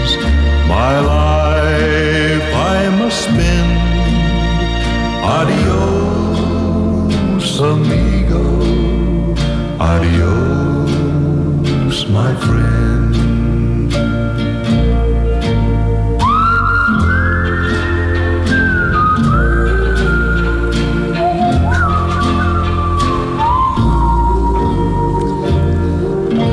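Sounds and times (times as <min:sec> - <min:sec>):
music: 0:00.0 - 0:26.5
person whistling a melody into a microphone: 0:16.2 - 0:26.5.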